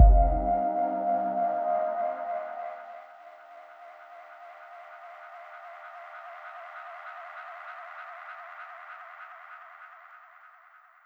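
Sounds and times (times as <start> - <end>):
glittering synth pad: 0.0 - 7.9.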